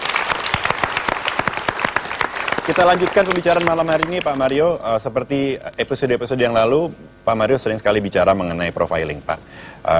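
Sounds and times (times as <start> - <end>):
audience applause at a live talk show: 0.0 - 4.4
speech: 2.7 - 9.9.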